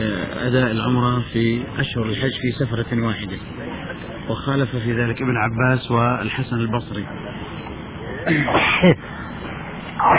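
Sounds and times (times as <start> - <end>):
speech: 0.4 - 7.4, 8.2 - 9.1
single sharp sneeze: 8.3 - 8.9, 10.0 - 10.1.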